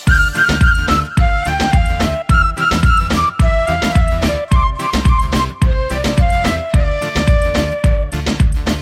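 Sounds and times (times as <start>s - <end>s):
flute bhangra music: 0.0s - 8.8s.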